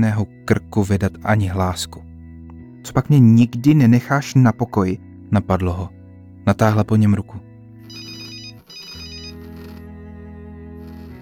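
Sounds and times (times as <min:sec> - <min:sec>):
speech: 0:00.0 - 0:02.1, 0:02.8 - 0:07.4
telephone ringing with loud electronic ringtone: 0:07.8 - 0:09.9.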